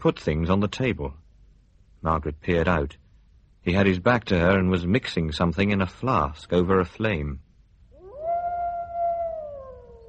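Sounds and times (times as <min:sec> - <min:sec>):
speech: 0:00.0 - 0:01.2, 0:02.0 - 0:03.0, 0:03.6 - 0:07.4
faint low rumble: 0:00.0 - 0:10.0
single wolf howling: 0:08.0 - 0:10.0.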